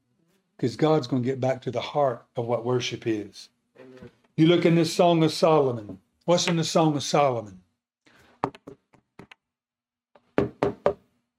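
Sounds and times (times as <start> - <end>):
speech: 0.6 - 7.6
knocking on a door: 10.4 - 11.0.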